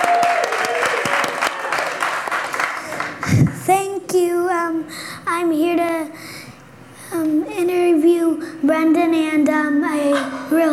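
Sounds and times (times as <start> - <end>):
room full of people clapping: 0.0 - 3.6
speech: 4.2 - 6.4, 7.1 - 10.7.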